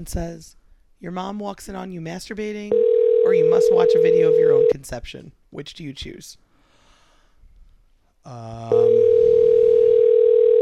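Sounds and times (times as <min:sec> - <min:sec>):
speech: 0:00.0 - 0:06.4, 0:08.2 - 0:09.1
telephone buzzy tone then steady high pure tone: 0:02.8 - 0:04.7, 0:08.7 - 0:10.6.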